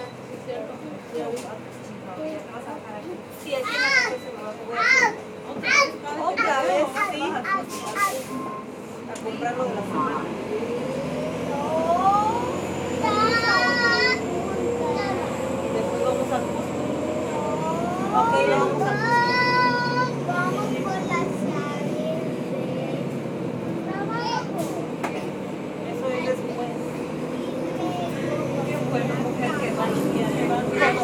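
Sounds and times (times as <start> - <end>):
city bus engine rumble and motor whine: 0.0 - 31.0
voices chattering inside a city bus: 0.0 - 31.0.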